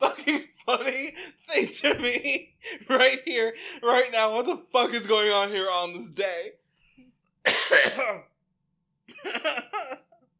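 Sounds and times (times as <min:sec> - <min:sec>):
speech: 0:00.7 - 0:06.6, 0:07.4 - 0:08.3, 0:09.1 - 0:10.0
person coughing and clearing throat: 0:07.4 - 0:08.4, 0:09.1 - 0:10.2.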